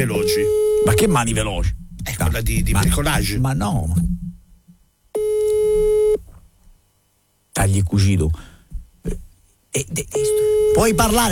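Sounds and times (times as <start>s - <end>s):
telephone busy signal when calling someone: 0.0s - 1.1s, 5.2s - 6.2s, 10.2s - 11.2s
speech: 0.0s - 4.1s, 7.6s - 11.3s.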